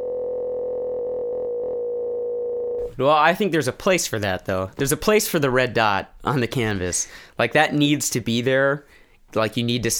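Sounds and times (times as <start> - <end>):
synthesized sine wave tones: 0.0 - 2.8
speech: 2.9 - 9.9.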